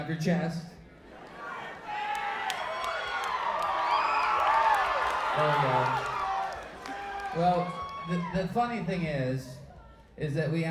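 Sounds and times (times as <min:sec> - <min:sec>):
speech: 0:00.0 - 0:00.8, 0:05.4 - 0:06.2, 0:07.3 - 0:09.6, 0:10.2 - 0:10.6
crowd yelling and whooping: 0:01.0 - 0:08.6.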